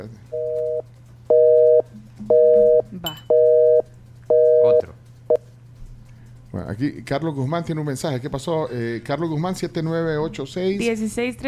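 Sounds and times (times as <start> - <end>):
speech: 0.0 - 0.3, 6.8 - 11.4
faint low hum on the telephone line: 0.0 - 10.9
telephone busy signal after dialing a number: 0.3 - 4.9.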